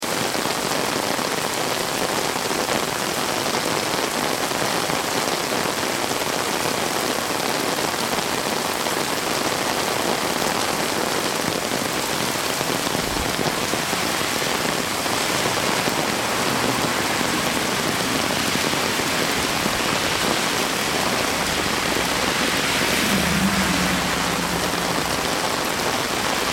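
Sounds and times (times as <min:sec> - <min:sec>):
rain on umbrella in Kyoto: 0:00.0 - 0:26.5
low level city traffic in Kyoto: 0:09.8 - 0:26.5.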